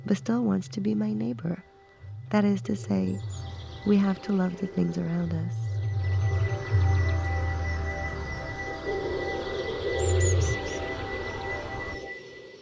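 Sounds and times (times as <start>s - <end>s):
faint droning hum: 0.0s - 12.5s
speech: 0.1s - 1.7s, 2.3s - 5.6s
steady low rumble: 0.7s - 12.0s
high sliding bird chirps: 5.7s - 12.0s.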